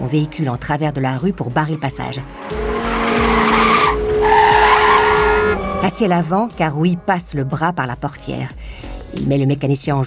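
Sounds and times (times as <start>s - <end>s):
speech: 0.0s - 2.6s, 5.8s - 10.0s
car tires squealing while skidding around a hairpin street corner: 2.2s - 6.5s.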